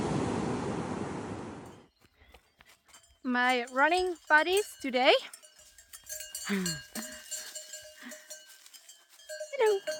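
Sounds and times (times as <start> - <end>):
ocean wave crashing up a beach: 0.0 - 1.6
speech: 3.2 - 5.4, 6.5 - 7.1, 9.6 - 9.9.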